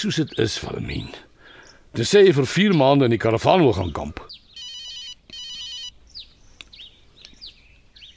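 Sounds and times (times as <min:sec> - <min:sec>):
speech: 0:00.0 - 0:01.3, 0:01.9 - 0:04.4
chirpy bird calls: 0:00.0 - 0:08.1
mobile phone ringing in electronic trilling bursts: 0:04.6 - 0:06.0.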